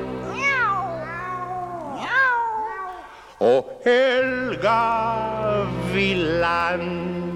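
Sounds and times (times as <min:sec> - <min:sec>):
cat meowing: 0:00.2 - 0:03.2
speech: 0:03.4 - 0:07.2.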